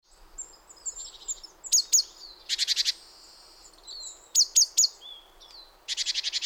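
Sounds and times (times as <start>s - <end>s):
great tit Parus major short sharp high calls: 0.9s - 3.1s, 4.0s - 5.0s.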